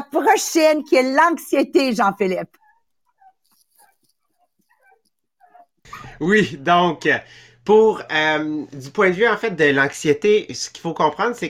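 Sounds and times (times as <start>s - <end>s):
speech: 0.1s - 2.6s, 5.9s - 11.4s
dog whimpering: 2.4s - 5.8s.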